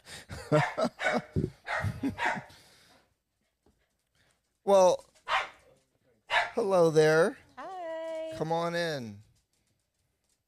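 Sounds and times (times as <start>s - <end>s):
speech: 0.5s - 2.3s, 4.7s - 5.1s, 6.7s - 7.4s, 8.4s - 9.2s
dog barking and yipping: 0.5s - 2.5s, 5.3s - 5.6s, 6.3s - 6.7s.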